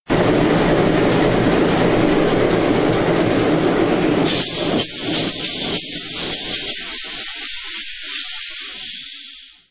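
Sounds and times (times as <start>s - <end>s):
diesel engine: 0.0s - 7.6s.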